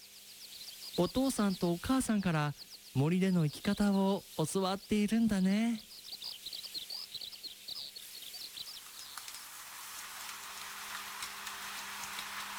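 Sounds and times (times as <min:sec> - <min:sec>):
akiapolaau chirping in a Hawaiian forest: 0:00.0 - 0:09.5
steady hiss of rain or wind: 0:00.0 - 0:12.5
speech: 0:01.0 - 0:05.9.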